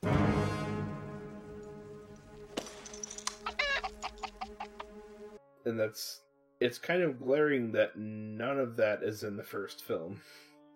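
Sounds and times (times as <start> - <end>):
chicken clucking: 3.4 - 5.0
speech: 5.7 - 10.7.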